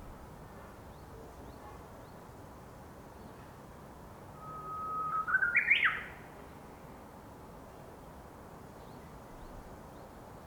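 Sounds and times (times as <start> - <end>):
Japanese bush warbler singing: 4.4 - 6.0.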